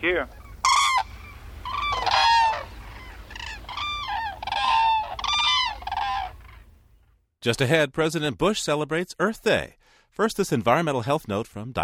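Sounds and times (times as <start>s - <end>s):
speech: 0.0s - 0.4s, 7.4s - 11.8s
whooping cranes trumpeting and bugling: 0.0s - 6.8s.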